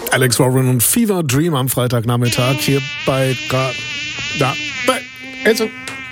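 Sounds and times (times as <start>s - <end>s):
speech: 0.1s - 5.9s
mosquito buzzing: 2.2s - 6.1s.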